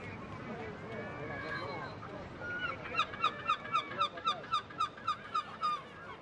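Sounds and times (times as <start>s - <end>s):
noisy harbour murmur and bustle in Essaouira Morocco: 0.0s - 6.2s
seagulls feeding on the quays of the Atlantic port of Essaouira squawking: 1.4s - 6.2s.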